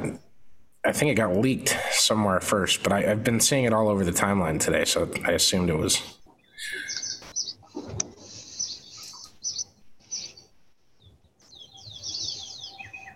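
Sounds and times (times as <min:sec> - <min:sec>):
speech: 0:00.8 - 0:06.8
birds chirping outdoors: 0:02.8 - 0:13.1.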